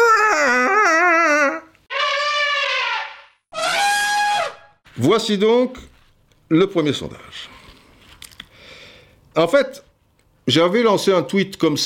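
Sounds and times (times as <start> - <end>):
elephant trumpet blasts: 0.0 - 4.8
speech: 5.0 - 5.9, 6.5 - 7.6, 9.4 - 11.8.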